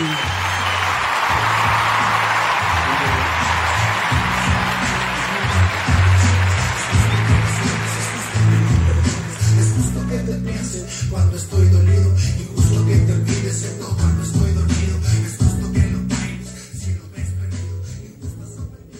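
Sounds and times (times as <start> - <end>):
crowd applause and cheering: 0.0 - 12.0
loud bass-heavy entrance song with steady pulsing beat: 1.3 - 18.9.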